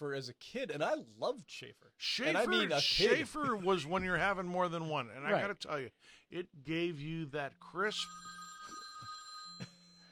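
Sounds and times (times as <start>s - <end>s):
speech: 0.0s - 8.4s
telephone ringing with steady electronic tones: 7.9s - 10.1s.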